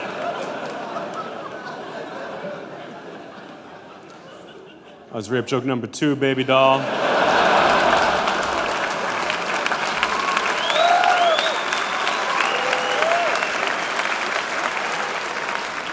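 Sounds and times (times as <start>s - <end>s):
audience applause: 0.0s - 2.1s, 7.0s - 15.9s
laughter: 0.0s - 5.3s, 6.6s - 10.2s
speech: 5.1s - 7.1s
scattered audience whoops and cheers: 9.9s - 14.2s.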